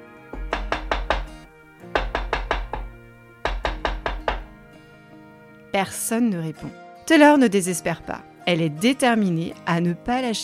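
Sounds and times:
brisk sharp knocking on a door: 0.3s - 4.6s
speech: 5.7s - 10.4s.

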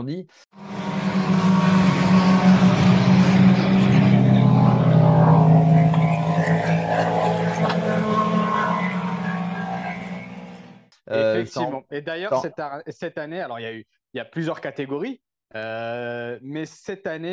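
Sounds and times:
speech: 0.0s - 3.3s, 11.1s - 17.3s
racing car engines roaring at the 24 Hours of Le Mans: 0.6s - 11.6s.

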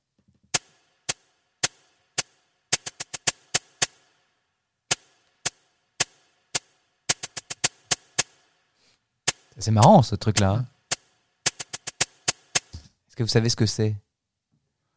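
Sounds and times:
cabasa hits from a drum machine sample: 0.5s - 4.0s, 4.9s - 8.4s, 9.3s - 12.9s
speech: 9.6s - 10.7s, 13.2s - 14.1s.

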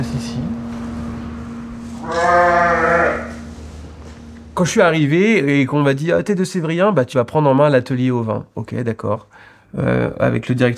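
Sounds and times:
steady low hum: 0.0s - 10.7s
sheep bleating in a sheepfold: 2.0s - 3.5s
speech: 4.6s - 10.7s.

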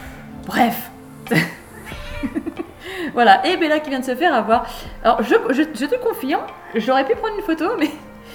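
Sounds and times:
speech: 0.5s - 1.6s, 3.2s - 8.3s
talkative female cat meowing and chirping: 1.8s - 2.5s.

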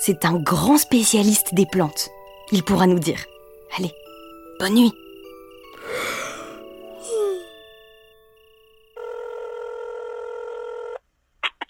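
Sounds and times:
speech: 0.0s - 4.0s, 4.6s - 5.0s
telephone buzzing ring tone: 7.5s - 11.0s.

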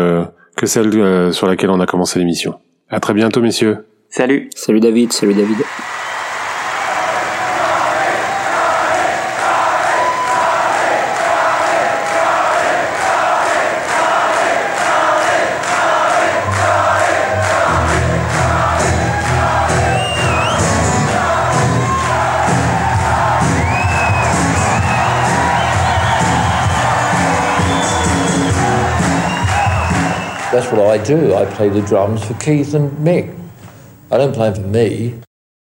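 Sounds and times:
speech: 0.0s - 6.1s, 31.1s - 33.4s, 34.1s - 35.3s
audience ovation of cheering, whoops and shouts: 5.2s - 32.4s.

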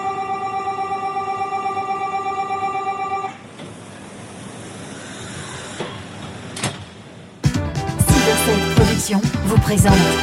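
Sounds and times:
high-speed train automatic door-closing warning tone: 0.0s - 3.8s
high-speed train clunks: 3.3s - 4.0s, 5.4s - 7.3s
speech: 8.5s - 10.2s.

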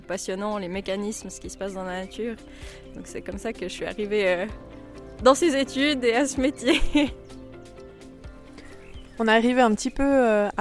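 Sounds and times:
speech: 0.1s - 7.4s, 9.2s - 10.5s
birds singing and calling in a marsh in the morning: 0.9s - 10.5s
laughter: 6.6s - 7.2s.

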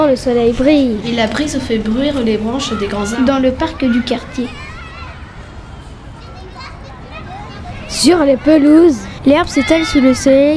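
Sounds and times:
speech: 0.0s - 4.6s, 8.0s - 10.5s
general noise: 0.0s - 10.5s
continuous babble of young voices: 0.4s - 10.5s
children shouting while playing outdoors: 0.8s - 10.5s.

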